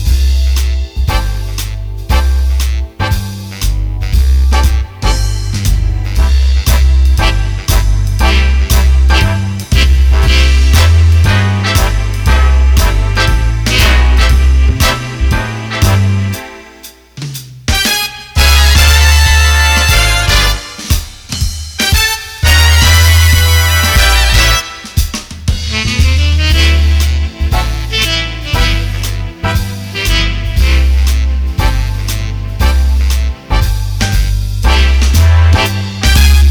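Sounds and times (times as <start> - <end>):
foxtrot played on accordion: 0.1 - 17.0, 17.8 - 20.9, 21.8 - 25.1, 25.8 - 36.4.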